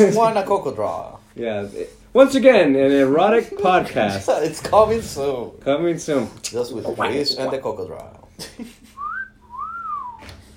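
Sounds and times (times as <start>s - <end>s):
speech: 0.0s - 8.8s
person whistling: 9.0s - 10.4s.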